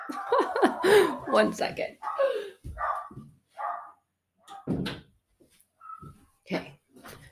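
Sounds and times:
laughter: 0:00.0 - 0:01.6
dog barking at a delivery: 0:00.0 - 0:04.7, 0:05.8 - 0:06.2
speech: 0:00.1 - 0:02.1.

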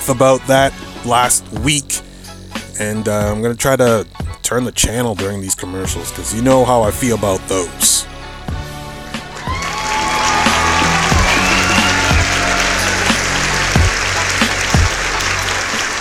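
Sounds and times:
speech: 0:00.1 - 0:02.1, 0:02.8 - 0:08.2
crowd applauding: 0:09.1 - 0:16.0
faint cheering: 0:09.2 - 0:16.0.

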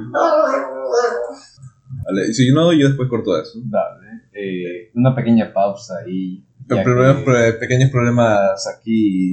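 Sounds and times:
speech: 0:00.0 - 0:00.4, 0:02.1 - 0:09.3
dog barking in a drawn-out harmonic yowl: 0:00.1 - 0:01.5.

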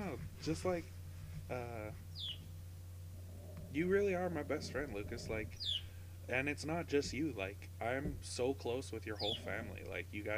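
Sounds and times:
low steady hum: 0:00.0 - 0:10.3
speech: 0:00.2 - 0:02.4, 0:03.7 - 0:10.3
bird with buzzy call and downward-sliding chirp: 0:01.5 - 0:07.2, 0:09.0 - 0:09.9.

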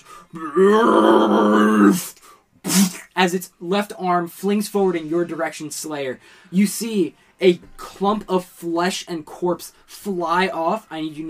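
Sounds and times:
speech: 0:00.2 - 0:11.2
human voice imitating zombie roar: 0:00.3 - 0:02.0.

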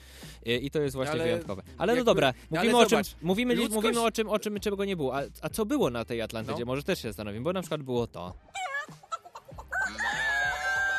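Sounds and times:
speech: 0:00.4 - 0:08.6
chicken squawking and clucking: 0:08.5 - 0:10.9
rooster crowing: 0:09.6 - 0:10.9.

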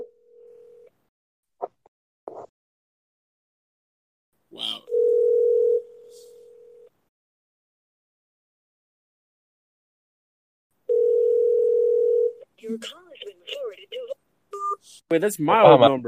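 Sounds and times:
telephone dial tone on a phone call: 0:00.3 - 0:00.9, 0:04.9 - 0:06.9, 0:10.9 - 0:12.4
speech: 0:12.7 - 0:16.0.

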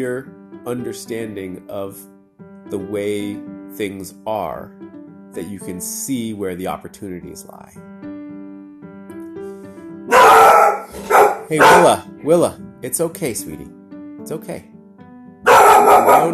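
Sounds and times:
speech: 0:00.0 - 0:08.0, 0:11.5 - 0:14.7, 0:16.0 - 0:16.3
puppy barking: 0:10.1 - 0:12.0, 0:15.4 - 0:16.3.

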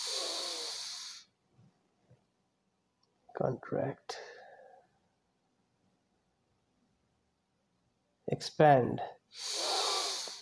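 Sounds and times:
deep loud inhale during a stretching exercise: 0:00.0 - 0:01.3, 0:04.1 - 0:04.9, 0:09.3 - 0:10.3
speech: 0:03.4 - 0:04.2, 0:08.3 - 0:09.6.

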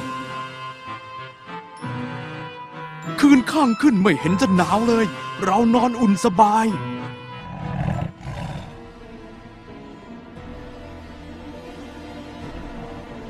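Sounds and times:
speech: 0:03.3 - 0:07.0
tiger roaring: 0:07.4 - 0:08.8.

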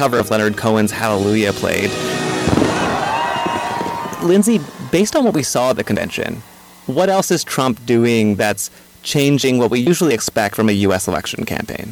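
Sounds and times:
speech: 0:00.0 - 0:02.2, 0:04.2 - 0:11.9
fireworks bursts: 0:00.0 - 0:06.9
fireworks popping and crackling: 0:02.4 - 0:02.8.

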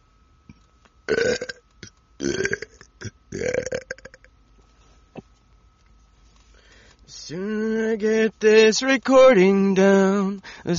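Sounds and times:
faint steady hum: 0:00.0 - 0:10.7
loud guttural burp: 0:01.1 - 0:01.6, 0:02.2 - 0:04.3
speech: 0:08.3 - 0:10.7.

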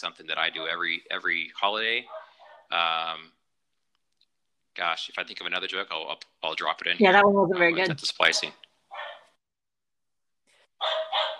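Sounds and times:
speech: 0:00.0 - 0:03.4, 0:04.8 - 0:08.6
dog barking: 0:02.0 - 0:02.7, 0:08.9 - 0:09.3, 0:10.8 - 0:11.3.

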